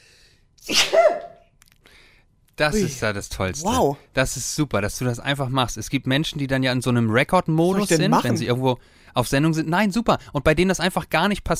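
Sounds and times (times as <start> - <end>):
sneeze: 0.6 - 1.5
speech: 2.6 - 11.5.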